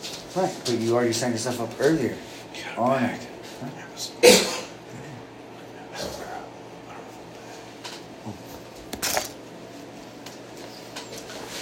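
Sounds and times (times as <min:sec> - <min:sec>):
speech: 0:00.4 - 0:04.5
person coughing: 0:04.2 - 0:05.3.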